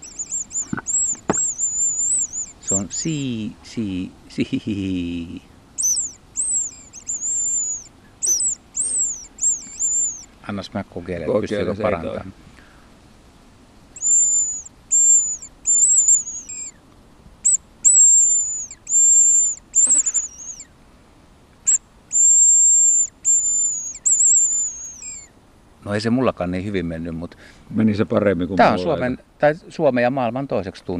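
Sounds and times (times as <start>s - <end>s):
hazel grouse call blown on a small whistle hunting lure: 0.0s - 3.3s, 5.8s - 10.3s, 14.0s - 16.8s, 17.4s - 20.7s, 21.7s - 25.3s
speech: 2.7s - 5.5s, 10.5s - 12.5s, 26.0s - 30.9s.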